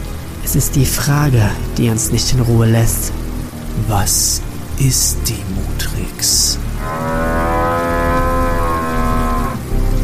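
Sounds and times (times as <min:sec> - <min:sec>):
steady low rumble of noise: 0:00.0 - 0:10.0
speech: 0:00.5 - 0:03.2, 0:03.8 - 0:07.4
long loud cow moo: 0:06.8 - 0:09.6.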